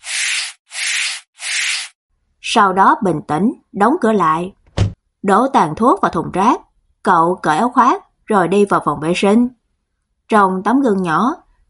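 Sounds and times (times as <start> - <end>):
broom sweeping a floor: 0.0 - 2.0
speech: 2.5 - 4.6, 5.2 - 9.6, 10.3 - 11.4.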